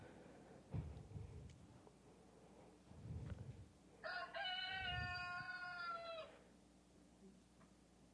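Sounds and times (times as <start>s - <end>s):
dull thuds: 0.7s - 1.2s
rooster crowing: 4.0s - 6.4s.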